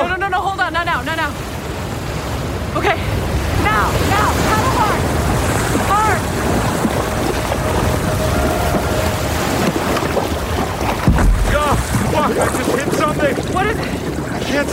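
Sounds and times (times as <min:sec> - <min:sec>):
rushing surf of a breaking ocean swell: 0:00.9 - 0:14.7
wind buffeting the microphone: 0:01.2 - 0:14.7
indistinct voices: 0:03.6 - 0:12.8.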